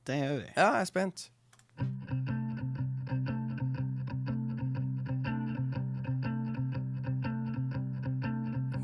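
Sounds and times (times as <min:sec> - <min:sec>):
speech: 0:00.1 - 0:01.4
driving distorted electric guitar in a blues band: 0:01.8 - 0:08.8.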